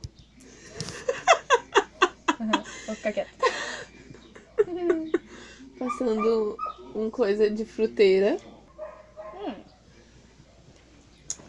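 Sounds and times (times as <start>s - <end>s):
quiet murmur: 0.0s - 11.4s
laughter: 0.5s - 6.4s
speech: 2.4s - 3.5s, 6.0s - 8.5s
dogs barking: 5.8s - 7.1s, 8.6s - 9.9s.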